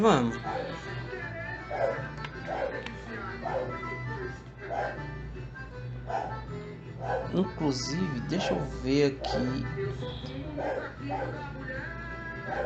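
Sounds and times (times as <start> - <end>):
speech: 0.0 - 0.9, 7.1 - 12.6
dog barking: 0.4 - 0.8, 1.7 - 3.9, 4.7 - 5.2, 6.1 - 6.4, 7.0 - 7.4, 8.4 - 9.5, 10.5 - 11.5, 12.4 - 12.6.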